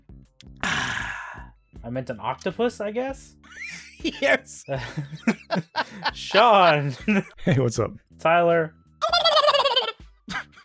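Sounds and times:
speech: 1.8s - 8.8s
laughter: 3.5s - 7.4s, 9.0s - 10.6s
person imitating a turkey gobble: 9.0s - 10.0s.

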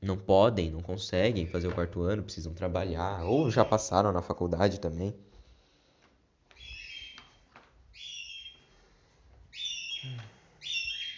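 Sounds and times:
speech: 0.0s - 5.3s
small pet bird singing loudly: 3.0s - 4.0s, 6.6s - 8.7s, 9.5s - 11.1s.

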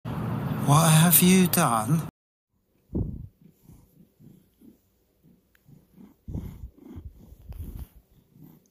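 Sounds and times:
speech: 0.7s - 2.1s
cat purring: 3.0s - 8.6s.

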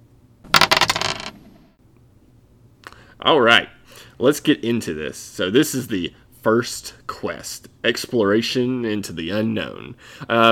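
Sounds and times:
dice rolled across a hard surface: 0.5s - 1.4s
speech: 3.2s - 10.5s.

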